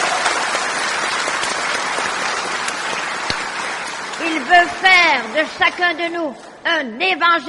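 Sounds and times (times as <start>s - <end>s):
audience applauding: 0.0s - 6.0s
speech: 4.5s - 7.4s.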